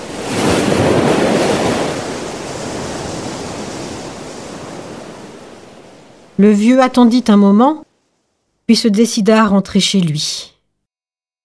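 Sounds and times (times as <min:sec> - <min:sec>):
crashing waves of a stormy raging sea: 0:00.0 - 0:08.6
speech: 0:06.4 - 0:07.9, 0:08.7 - 0:10.5.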